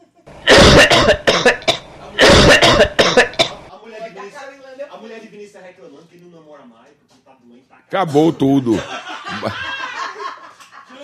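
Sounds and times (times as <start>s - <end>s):
harsh coughing: 0.4s - 3.7s
quieter throat sounds: 0.5s - 3.7s
speech: 5.6s - 9.8s
laughter: 8.7s - 11.0s.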